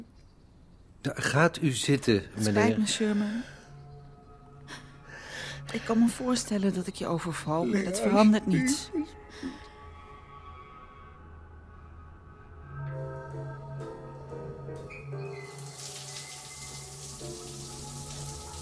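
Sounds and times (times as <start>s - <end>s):
speech: 1.0s - 3.6s, 5.7s - 9.6s
shower running: 15.2s - 18.5s.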